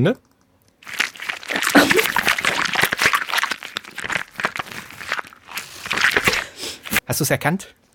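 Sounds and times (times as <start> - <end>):
speech: 0.0 - 1.0, 7.1 - 7.8
plastic bottle crinkling: 0.8 - 7.0
sheet of paper crackling: 0.8 - 7.0
wet squelching of a rubber glove with water: 0.8 - 7.0.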